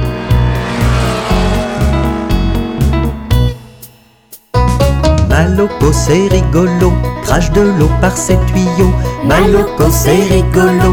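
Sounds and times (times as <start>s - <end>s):
powerful big car engine revving: 0.0s - 4.0s
speech: 5.5s - 10.9s.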